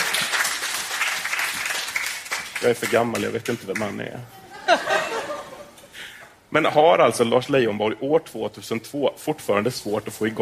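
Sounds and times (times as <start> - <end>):
crowd applauding: 0.0 - 3.9
speech: 2.6 - 4.9, 6.5 - 10.4
laughter: 4.3 - 5.9.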